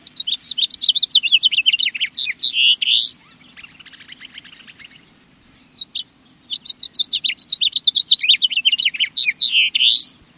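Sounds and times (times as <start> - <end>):
House Finch song: 0.0 - 10.3.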